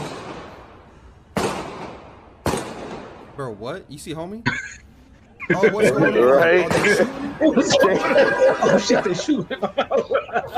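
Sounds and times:
gunshots: 0.0s - 3.4s, 6.6s - 8.2s
speech: 3.4s - 4.9s, 5.5s - 10.5s
laughter: 5.2s - 10.5s.

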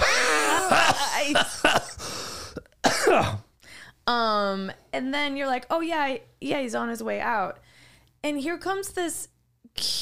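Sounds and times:
person coughing: 0.0s - 3.6s
speech: 1.2s - 1.8s, 3.1s - 3.4s, 4.1s - 7.6s, 8.2s - 10.0s.

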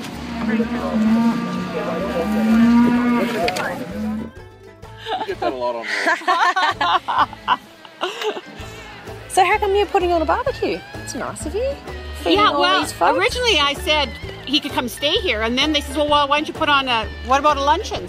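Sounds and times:
cow mooing on a ranch: 0.2s - 4.4s
speech: 0.5s - 1.2s, 5.1s - 8.5s, 9.4s - 18.0s
people laughing: 5.0s - 8.7s.

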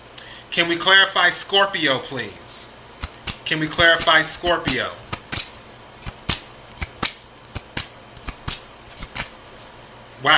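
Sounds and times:
speech: 0.5s - 2.7s, 3.5s - 5.0s
tarot cards being shuffled: 3.0s - 9.7s.

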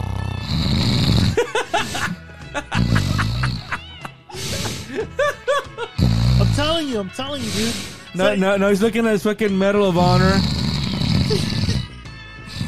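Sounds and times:
man exaggeratedly imitating loud snoring: 0.0s - 2.2s, 2.8s - 4.9s, 5.9s - 8.2s, 10.0s - 12.6s
laughter: 1.4s - 6.0s
speech: 6.8s - 10.6s.

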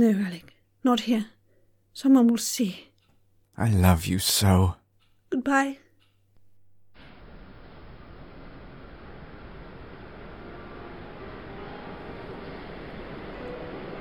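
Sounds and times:
speech: 0.0s - 1.4s, 2.0s - 2.9s, 3.6s - 5.8s
train arriving at a station platform: 7.1s - 13.9s.

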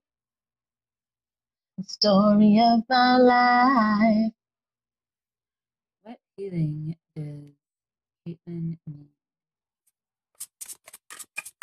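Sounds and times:
speech: 1.8s - 4.4s, 6.1s - 7.6s, 8.3s - 9.1s
deck of cards being shuffled hard: 10.4s - 11.6s.

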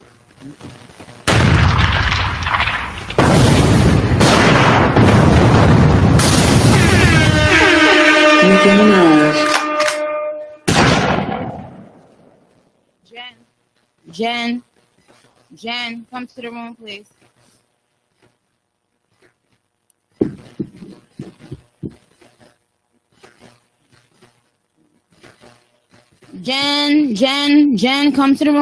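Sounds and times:
speech: 0.4s - 1.2s, 8.6s - 9.1s, 14.2s - 14.7s, 15.5s - 17.2s, 26.4s - 28.6s
booming explosion sound effects: 1.2s - 8.2s, 10.7s - 12.4s, 20.2s - 21.6s
shrill whining tone: 6.8s - 10.6s.

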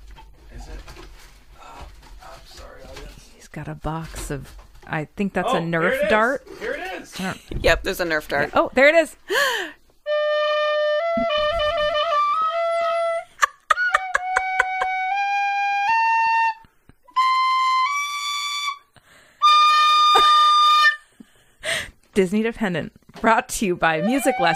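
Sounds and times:
speech: 3.6s - 6.4s, 7.2s - 9.8s, 22.2s - 24.5s
tin whistle playing a bright reedy melody: 10.1s - 21.0s, 24.0s - 24.5s.

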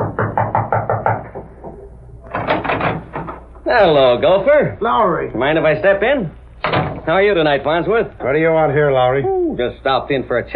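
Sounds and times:
rapping on a door: 0.0s - 3.5s, 6.6s - 7.1s
speech: 3.7s - 10.5s.

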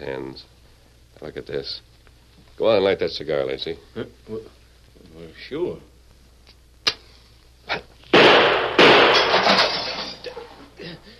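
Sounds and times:
speech: 0.0s - 0.6s, 1.2s - 1.9s, 2.6s - 5.9s
gunshots fired to shoot a cigar out of a hand: 8.1s - 9.8s.

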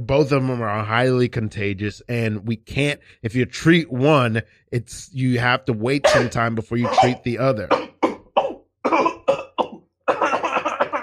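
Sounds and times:
speech: 0.0s - 7.8s
wet harsh rhythmic coughing: 5.9s - 11.0s.

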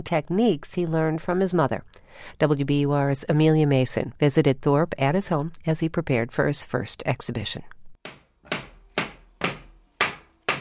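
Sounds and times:
speech: 0.0s - 8.2s
mallet striking corners of a wooden frame: 8.0s - 10.5s.

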